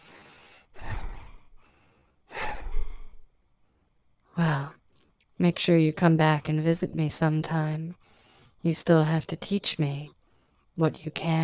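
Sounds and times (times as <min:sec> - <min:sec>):
deep heavy breathing: 0:00.0 - 0:03.3
speech: 0:05.4 - 0:08.0, 0:08.6 - 0:10.2, 0:10.8 - 0:11.4.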